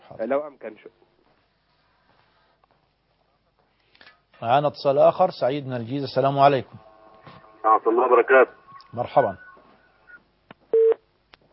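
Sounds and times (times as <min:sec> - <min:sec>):
speech: 0:00.2 - 0:01.1, 0:04.4 - 0:06.9, 0:07.6 - 0:09.4
electronic phone line beep after a dropped call: 0:06.9 - 0:11.0.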